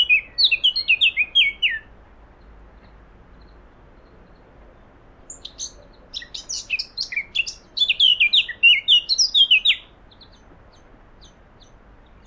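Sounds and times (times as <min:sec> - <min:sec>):
Eurasian blackcap Sylvia atricapilla singing: 0:00.0 - 0:01.9, 0:05.3 - 0:12.2.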